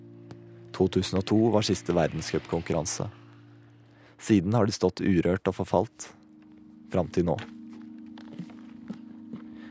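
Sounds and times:
speech: 0.8s - 3.2s, 4.2s - 6.2s, 6.9s - 7.6s
crunching footsteps of person walking with skis on shoulder: 7.3s - 9.6s.

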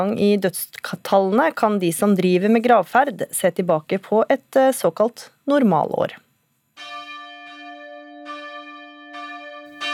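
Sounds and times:
speech: 0.0s - 6.2s
church bells ringing for a funeral: 6.8s - 9.9s.

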